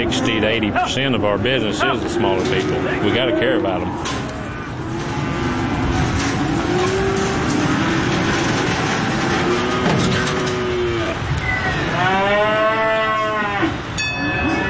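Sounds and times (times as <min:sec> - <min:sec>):
speech: 0:00.0 - 0:04.2
constant low rumble of machinery and movement: 0:00.0 - 0:12.1
cattle mooing in a pen at a livestock auction market: 0:00.0 - 0:14.6.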